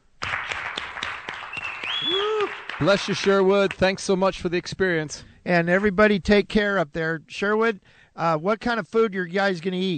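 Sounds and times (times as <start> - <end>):
audience applause at the close of a show: 0.2 - 3.8
speech: 2.1 - 9.9.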